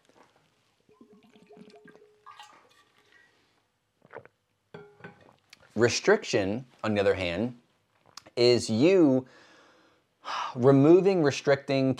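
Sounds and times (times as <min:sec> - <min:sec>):
water gurgling pour for a drink: 0:00.8 - 0:03.4
speech: 0:05.8 - 0:07.6, 0:08.4 - 0:09.4, 0:10.2 - 0:11.9.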